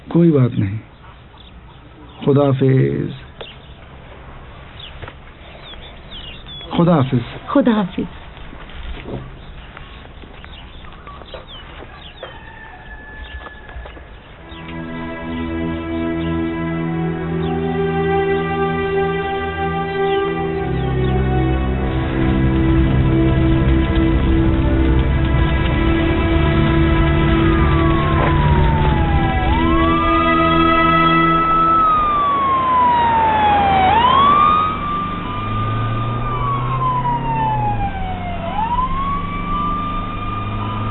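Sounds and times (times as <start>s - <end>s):
speech: 0.2s - 0.9s, 2.2s - 3.2s, 6.8s - 8.2s
ambulance siren wailing: 12.0s - 40.8s
heavy rumbling ambulance engine drone: 14.4s - 40.8s.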